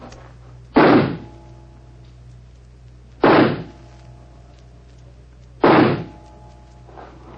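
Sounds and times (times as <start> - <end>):
low steady hum: 0.0 - 7.3
pistol shots fired at a target during a shooting match: 0.8 - 1.2, 3.2 - 3.8, 5.6 - 6.2.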